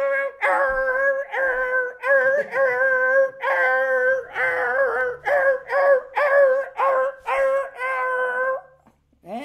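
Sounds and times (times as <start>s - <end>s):
person imitating a dog howling and yelping: 0.0s - 8.8s.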